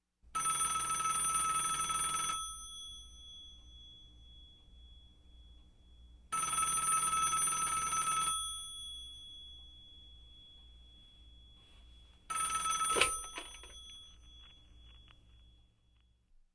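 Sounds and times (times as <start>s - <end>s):
phone ringing: 0.4s - 3.7s, 6.3s - 9.6s, 10.4s - 16.1s
phone receiver being picked up: 12.6s - 15.0s.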